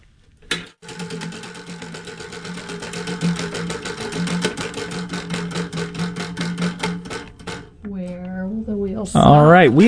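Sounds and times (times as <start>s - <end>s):
prize wheel spinning with ratcheting clicks: 0.8s - 7.8s.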